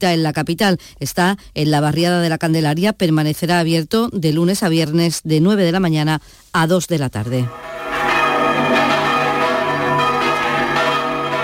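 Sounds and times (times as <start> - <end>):
speech: 0.0 - 7.8
church bells rung by hand in the traditional Spanish manual style in Utrera Spain: 7.5 - 11.4.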